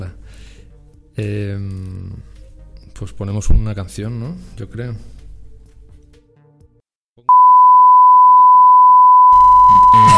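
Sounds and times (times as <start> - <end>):
speech: 1.2 - 2.3, 3.0 - 5.2
loud steady electronic beep: 7.3 - 10.1.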